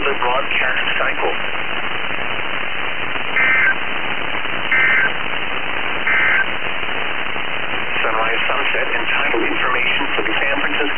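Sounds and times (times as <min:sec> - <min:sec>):
radio static hiss: 0:00.0 - 0:10.9
speech: 0:00.1 - 0:01.6
radio warning alarm tone beeps: 0:03.4 - 0:03.8, 0:04.7 - 0:05.1, 0:06.1 - 0:06.4.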